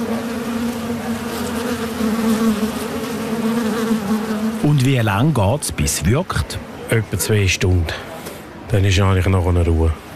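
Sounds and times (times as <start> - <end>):
many wasps buzzing around their nest in a house facade cavity: 0.0 - 4.9
speech: 4.8 - 8.1, 8.7 - 10.0.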